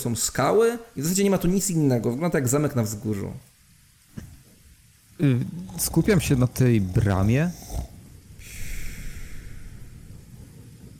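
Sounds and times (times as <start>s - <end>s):
speech: 0.0s - 3.5s, 5.2s - 7.6s
low rasping snore: 5.2s - 10.3s.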